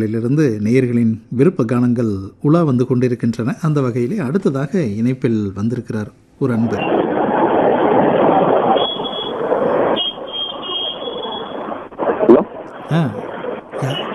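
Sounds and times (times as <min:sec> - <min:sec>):
speech: 0:00.0 - 0:07.2, 0:12.9 - 0:13.2
brief warbling tones: 0:06.6 - 0:14.1
strong wind roaring into a caller's telephone line: 0:06.6 - 0:14.1
faint voice-like sounds: 0:12.3 - 0:14.1.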